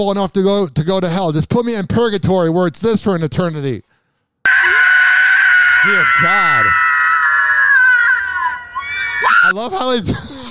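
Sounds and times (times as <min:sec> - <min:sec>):
speech: 0:00.0 - 0:03.9, 0:05.8 - 0:06.8, 0:09.2 - 0:10.3
person screaming: 0:04.5 - 0:09.6.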